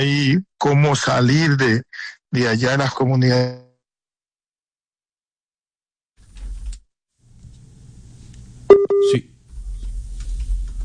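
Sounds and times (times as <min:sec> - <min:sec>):
speech: 0:00.0 - 0:03.7, 0:09.0 - 0:09.3
WhatsApp calling tone electronic beep: 0:08.7 - 0:09.2.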